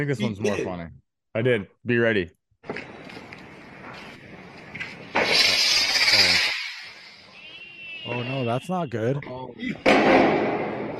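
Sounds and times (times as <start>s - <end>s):
speech: 0.0s - 2.9s, 8.1s - 10.6s
firework exploding: 5.0s - 7.5s.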